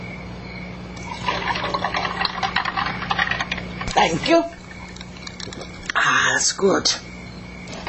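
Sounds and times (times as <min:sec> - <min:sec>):
lemon squash pouring into a glass: 0:01.0 - 0:05.9
speech: 0:04.0 - 0:04.5, 0:06.4 - 0:07.1.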